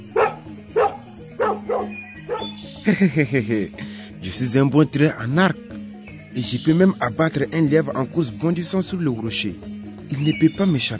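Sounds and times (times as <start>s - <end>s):
dog barking: 0.1s - 2.6s
laughter: 2.8s - 3.9s
speech: 2.9s - 5.6s, 6.4s - 10.9s.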